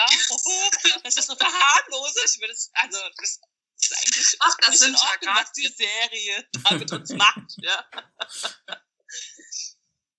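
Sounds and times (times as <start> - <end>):
speech: 0.1 - 9.6
woman coughing: 6.6 - 8.8
laughter: 6.6 - 9.7
woman's raspy breathy wheeze as she catches her breath: 8.2 - 8.7.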